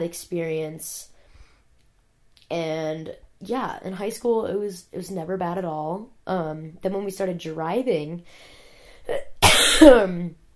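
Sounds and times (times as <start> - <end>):
speech: 0.0 - 1.1, 2.5 - 10.4
person coughing and clearing throat after smoking marijuana: 9.1 - 10.3.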